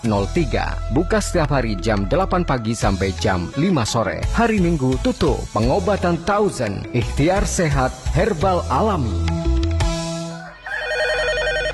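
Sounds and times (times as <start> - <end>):
speech: 0.0 - 9.5
telephone electronic ringtone ringing with an incoming call: 10.6 - 11.7.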